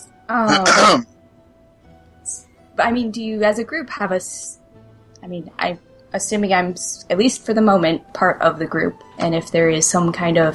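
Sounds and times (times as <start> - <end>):
speech: 0.3 - 1.1, 2.3 - 4.6, 5.2 - 10.5
deliberate cough-like throat clearing: 0.5 - 1.0.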